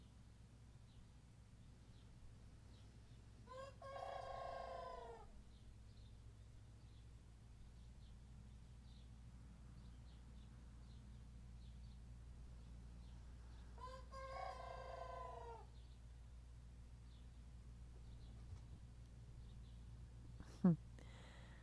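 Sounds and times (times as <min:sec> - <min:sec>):
steady low hum: 0:00.0 - 0:21.6
young rooster attempting to crow: 0:03.4 - 0:05.3, 0:13.8 - 0:15.7.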